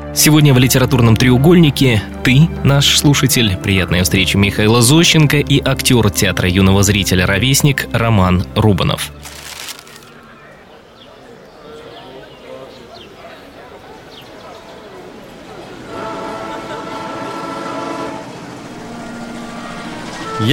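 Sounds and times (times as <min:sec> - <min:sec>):
speech: 0:00.2 - 0:09.4
approaching passenger train rumbling with rattling wheels: 0:15.3 - 0:20.5.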